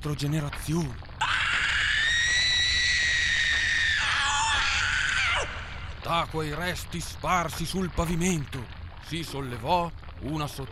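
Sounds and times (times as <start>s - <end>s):
speech: 0.0s - 1.1s, 6.0s - 10.7s
woman screaming shrill and sustained: 1.2s - 5.9s.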